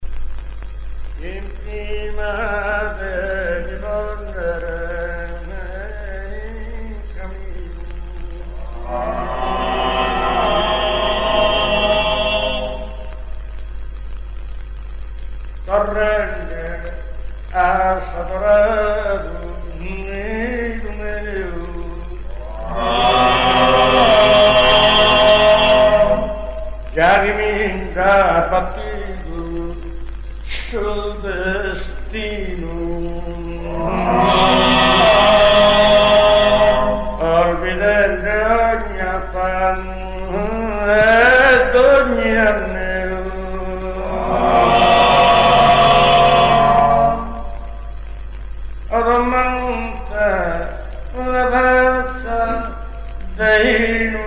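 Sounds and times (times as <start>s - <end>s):
improvised ottava and polyphonic singing in Thiesi: 1.2s - 13.8s, 15.6s - 54.2s.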